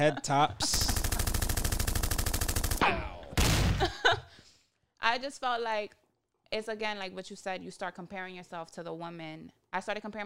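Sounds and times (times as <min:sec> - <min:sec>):
speech: 0:00.0 - 0:00.9, 0:05.2 - 0:10.2
automatic gunfire sound effect: 0:00.7 - 0:03.8.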